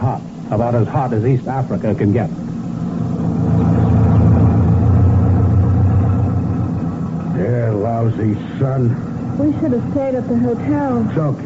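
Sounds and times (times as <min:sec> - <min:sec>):
speech: 0:00.2 - 0:02.4, 0:08.1 - 0:11.4
jeep-type motor lorry engine droning while driving: 0:02.5 - 0:11.4.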